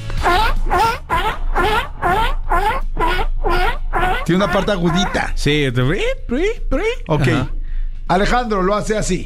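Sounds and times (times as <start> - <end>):
seal calling in harsh squealing bursts: 0.2 - 5.4
speech: 4.3 - 7.6, 8.1 - 9.2.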